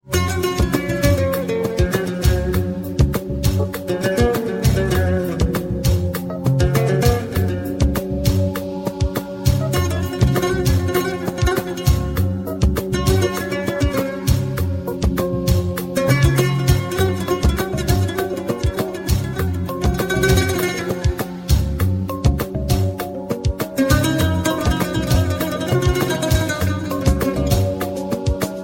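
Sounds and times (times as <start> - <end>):
Arabic music ringtone: 0.0 - 28.6.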